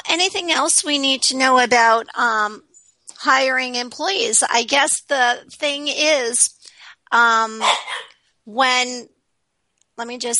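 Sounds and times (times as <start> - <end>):
speech: 0.1 - 7.8, 8.5 - 9.2, 10.0 - 10.3
dog barking: 7.6 - 8.2.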